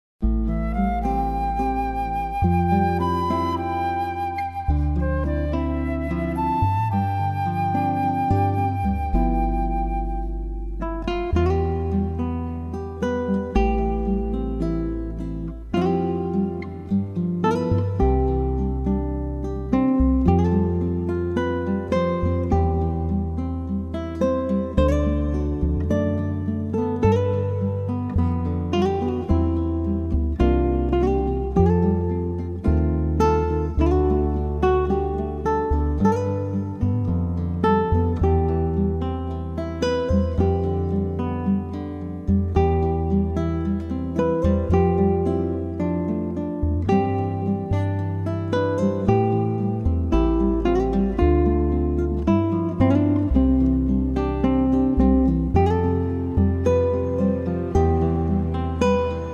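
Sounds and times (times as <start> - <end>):
acoustic praise instrumental music: 0.2 - 59.3.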